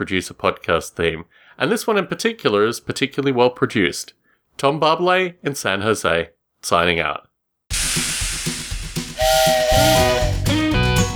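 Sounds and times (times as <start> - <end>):
speech: 0.0 - 7.3, 7.9 - 8.1
toy HO-scale steam locomotive chuffing: 7.7 - 10.4
toy HO-scale steam locomotive whistle blowing: 7.7 - 10.9.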